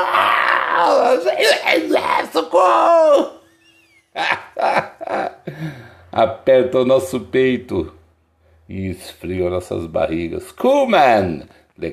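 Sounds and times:
person screaming like on a roller coaster: 0:00.0 - 0:03.4
speech: 0:00.9 - 0:03.4, 0:04.2 - 0:04.9, 0:05.5 - 0:08.0, 0:08.7 - 0:11.9
laughter: 0:03.5 - 0:05.8.

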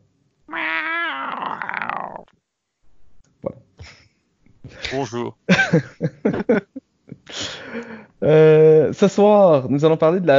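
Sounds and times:
person imitating cat meow: 0:00.5 - 0:02.3
speech: 0:04.9 - 0:06.7, 0:08.2 - 0:10.3
laughter: 0:05.5 - 0:06.8.

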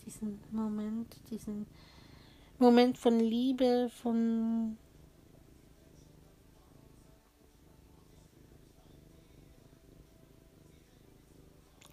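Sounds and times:
cat purring: 0:00.0 - 0:11.9
speech: 0:00.2 - 0:02.0, 0:02.6 - 0:04.8.

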